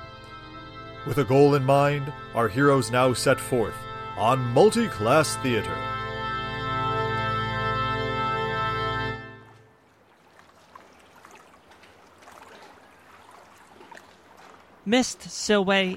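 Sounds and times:
loud sustained harmonic drone: 0:00.0 - 0:09.5
speech: 0:01.0 - 0:05.9, 0:14.9 - 0:15.9
river water flowing with soft splashes and gurgles: 0:09.3 - 0:15.9.

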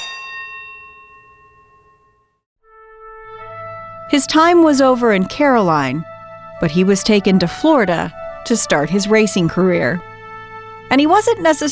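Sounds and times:
starter's bell from a racehorse training track ringing: 0:00.0 - 0:02.4
speech: 0:04.1 - 0:10.1, 0:10.9 - 0:11.7.

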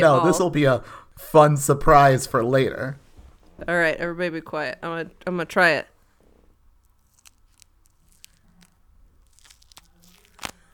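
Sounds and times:
speech: 0:00.0 - 0:03.0, 0:03.6 - 0:05.9
something dry being peeled off, crackling and tearing: 0:06.3 - 0:10.7.

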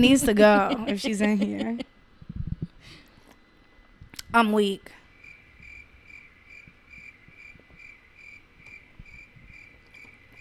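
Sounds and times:
laughter: 0:00.0 - 0:01.9
speech: 0:00.0 - 0:01.9, 0:04.3 - 0:05.0
quiet low rumble: 0:02.2 - 0:02.8
chorus of crickets chirping: 0:03.4 - 0:10.4.

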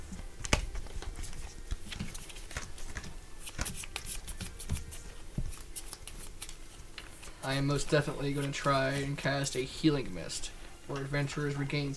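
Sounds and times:
hand of game cards being shuffled in a card game: 0:00.0 - 0:09.2
speech: 0:07.4 - 0:11.9.

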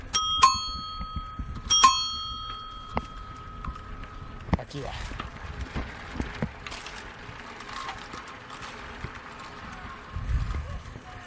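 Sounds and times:
bright bell ringing in front of a church: 0:00.0 - 0:04.5
low rumble: 0:00.0 - 0:11.2
speech: 0:04.7 - 0:05.2.

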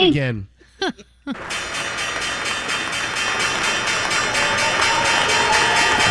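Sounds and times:
speech: 0:00.0 - 0:01.9
dense wash of noise: 0:00.0 - 0:06.0
stock exchange closing bell ringing: 0:01.5 - 0:06.0.

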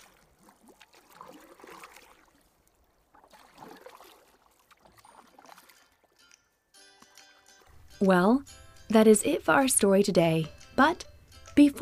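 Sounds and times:
oars splashing and swishing through water as a boat is rowed: 0:00.0 - 0:06.4
faint musical tone: 0:06.3 - 0:11.8
speech: 0:08.0 - 0:11.8.

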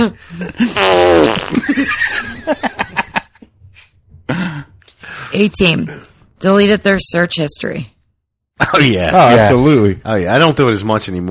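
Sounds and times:
speech: 0:00.0 - 0:03.0, 0:04.3 - 0:08.0, 0:08.6 - 0:11.2
people laughing: 0:00.3 - 0:03.5
loud drawn-out buzzing fart: 0:00.6 - 0:01.9.

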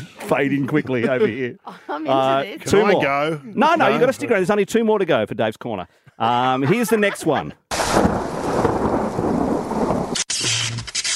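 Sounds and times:
laughter: 0:00.0 - 0:02.4, 0:06.2 - 0:07.7
speech: 0:00.3 - 0:08.2
deep loud rolling rumble of thunder: 0:07.7 - 0:10.2
heavy steady rain in a thunderstorm: 0:07.7 - 0:10.7.

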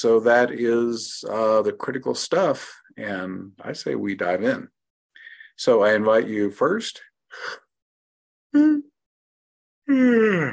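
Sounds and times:
speech: 0:00.0 - 0:04.8, 0:05.6 - 0:07.6, 0:08.5 - 0:08.9, 0:09.9 - 0:10.5
person yawning: 0:08.5 - 0:08.9, 0:09.9 - 0:10.5.

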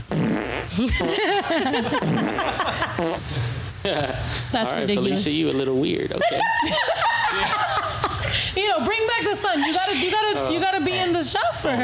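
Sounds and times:
sputtering warbling fart noise sound effect: 0:00.0 - 0:01.3, 0:01.9 - 0:03.5
speech: 0:00.7 - 0:07.7, 0:08.3 - 0:11.8
laughter: 0:00.8 - 0:03.2, 0:05.3 - 0:08.4.

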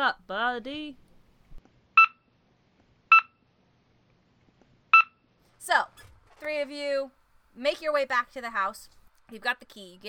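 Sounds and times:
speech: 0:00.0 - 0:01.1, 0:05.6 - 0:10.0
two-tone electronic phone beeps for incoming call: 0:02.0 - 0:02.2, 0:03.1 - 0:03.4, 0:04.9 - 0:05.2.

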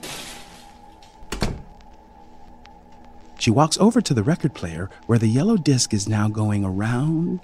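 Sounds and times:
steady hiss: 0:00.0 - 0:07.4
wooden closet door thunking shut against the frame: 0:01.3 - 0:01.7
speech: 0:03.4 - 0:07.4.

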